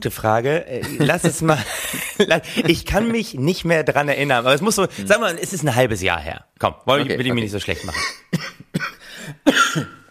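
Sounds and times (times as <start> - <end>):
speech: 0.0 - 8.5
laughter: 0.8 - 3.2, 7.0 - 8.2
harsh coughs: 7.8 - 10.1.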